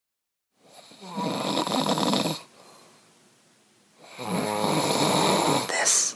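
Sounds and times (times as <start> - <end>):
man snoring at night: 0.6 - 2.5, 4.0 - 6.1.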